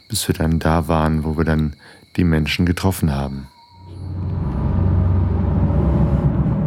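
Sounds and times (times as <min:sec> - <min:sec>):
speech: 0:00.1 - 0:03.5
off-road vehicle engine droning heard from inside the car on a bumpy track: 0:03.9 - 0:06.6.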